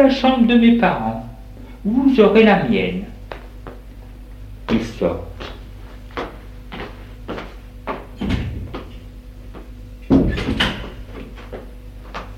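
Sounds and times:
speech: 0:00.0 - 0:01.2, 0:01.8 - 0:03.1, 0:04.7 - 0:05.5
door creaking and thudding open: 0:10.1 - 0:11.0.

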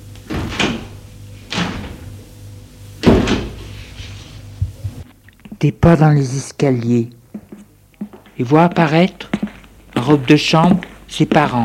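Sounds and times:
doors opening with creak or thud: 0:00.2 - 0:02.2, 0:03.0 - 0:03.8
speech: 0:05.6 - 0:07.2, 0:08.4 - 0:09.4, 0:10.0 - 0:11.6.

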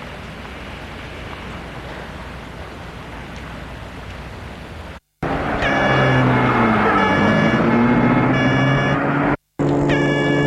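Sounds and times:
car rumbling through busy traffic in Paris: 0:00.0 - 0:10.4
car horns honking in Paris traffic: 0:05.2 - 0:10.4.

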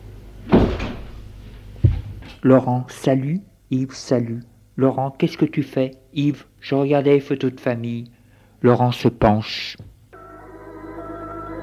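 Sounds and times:
door thump as a visitor is let in: 0:00.5 - 0:01.2
speech: 0:02.4 - 0:09.9.

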